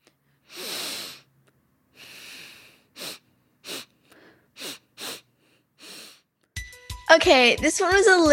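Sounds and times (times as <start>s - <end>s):
person sniffing: 0.0s - 6.3s
speech: 7.1s - 8.3s.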